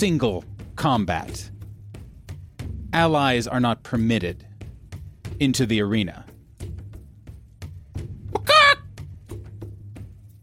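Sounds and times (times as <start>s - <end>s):
speech: 0.0s - 1.6s, 2.9s - 4.5s, 5.4s - 6.2s
chicken squawk: 8.4s - 8.8s.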